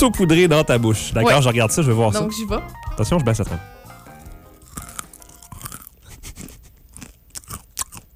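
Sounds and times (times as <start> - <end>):
speech: 0.0 - 3.9
crunchy snack mix with dark chocolate being chewed: 4.1 - 8.1.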